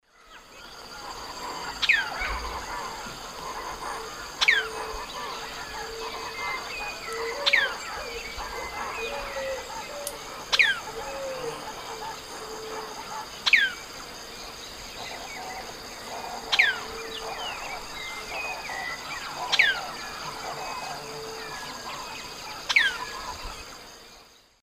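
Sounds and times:
Elaenia spectabilis song in South American eastern lowlands: 0.1s - 24.6s.

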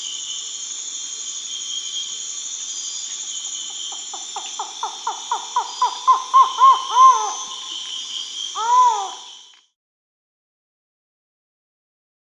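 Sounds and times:
steady high hiss: 0.0s - 9.4s
Collared forest-falcon Micrastur semitorquatus calling hollow arched notes in the Amazon region of Peru: 4.6s - 7.6s, 8.6s - 9.2s.

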